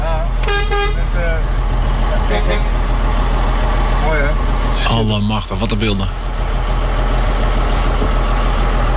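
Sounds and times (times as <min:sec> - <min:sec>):
convoy of vehicles driving with truck-like engine drone: 0:00.0 - 0:08.9
speech: 0:04.9 - 0:06.8.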